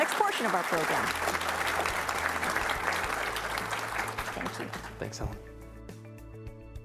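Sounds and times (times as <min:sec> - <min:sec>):
audience applause at a live interview event: 0:00.0 - 0:05.4
speech: 0:00.4 - 0:01.4, 0:04.4 - 0:05.5.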